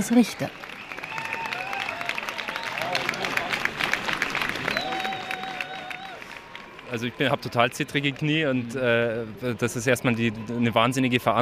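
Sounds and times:
speech: 0.0 - 0.7, 6.9 - 11.4
crowd applauding: 0.0 - 11.4
shrill whistles from a crowd: 0.6 - 2.9, 4.6 - 6.2.

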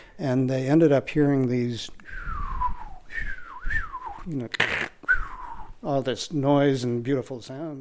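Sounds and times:
speech: 0.2 - 2.3, 4.2 - 4.9, 5.8 - 7.8
natural radio whistlers on a field receiver: 2.1 - 4.3, 5.0 - 5.8.

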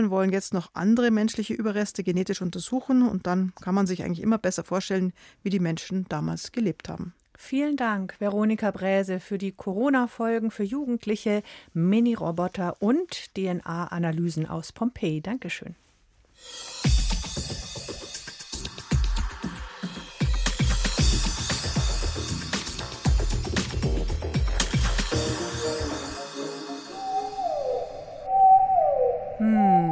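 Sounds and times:
speech: 0.0 - 15.8
loud rhythmic musical passage: 16.4 - 27.4
blue whale song underwater: 26.9 - 29.9.

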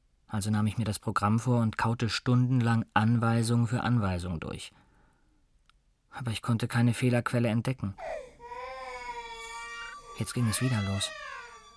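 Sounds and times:
speech: 0.3 - 4.8, 6.1 - 8.3, 10.2 - 11.2
toddler crying pitifully: 8.0 - 11.7.

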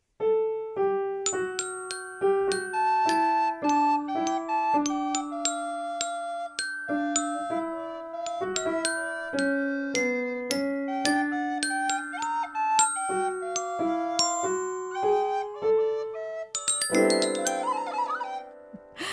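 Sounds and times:
piano playing snow songs: 0.0 - 19.1
glockenspiel playing bright bell-like notes: 1.3 - 19.1
flute playing songs: 2.8 - 19.1.

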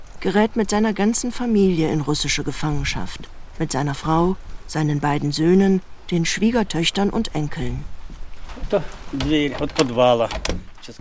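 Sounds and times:
speech: 0.2 - 7.9, 8.6 - 11.0
soft knocks and clunks: 8.0 - 11.0
green wooden school cellar door creaking on its hinges: 8.4 - 11.0.

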